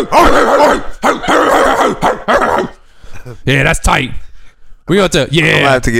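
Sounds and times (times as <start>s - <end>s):
speech: 0.0s - 2.2s, 3.3s - 4.3s, 4.9s - 5.9s
person imitating dog barking: 0.0s - 2.8s.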